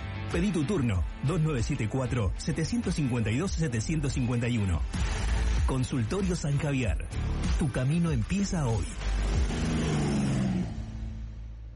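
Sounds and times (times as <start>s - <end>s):
speech: 0.3s - 9.6s
motorcycle engine revving during repair: 8.8s - 11.5s.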